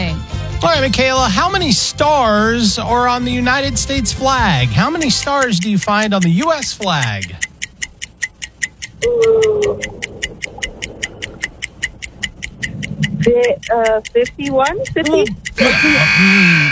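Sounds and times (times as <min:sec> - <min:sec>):
game show countdown timer ticking: 0:00.0 - 0:16.6
speech: 0:00.6 - 0:07.5, 0:09.0 - 0:10.1, 0:13.2 - 0:16.6
loud harsh game show buzzer: 0:15.6 - 0:16.6.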